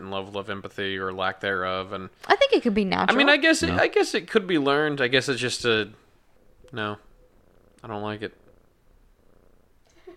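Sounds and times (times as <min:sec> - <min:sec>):
speech: 0:00.0 - 0:06.0, 0:06.7 - 0:07.1, 0:07.8 - 0:08.4
cat purring: 0:03.3 - 0:10.1.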